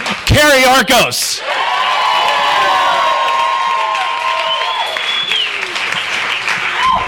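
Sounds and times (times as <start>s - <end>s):
speech: 0.4s - 2.8s
whoops and high cheers: 1.4s - 6.0s, 6.6s - 7.0s
large audience clapping at a book event: 1.4s - 7.0s.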